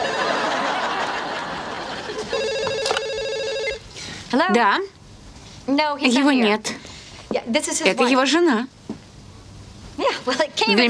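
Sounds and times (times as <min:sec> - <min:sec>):
telephone ringing with electronic trill: 0:00.0 - 0:01.0, 0:02.2 - 0:03.8
people laughing: 0:00.0 - 0:02.4
speech: 0:04.3 - 0:05.0, 0:05.7 - 0:06.8, 0:07.4 - 0:08.8, 0:10.3 - 0:10.8.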